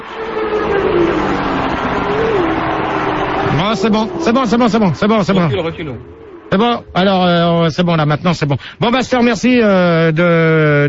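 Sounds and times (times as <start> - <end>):
racing car engine idling and revving in a paddock: 0.0 - 8.4
speech: 3.7 - 10.8.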